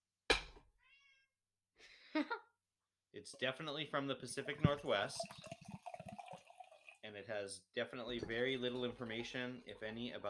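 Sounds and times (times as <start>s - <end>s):
cat meowing: 0.8s - 1.3s
speech: 2.2s - 2.4s, 3.1s - 5.7s, 7.1s - 10.2s.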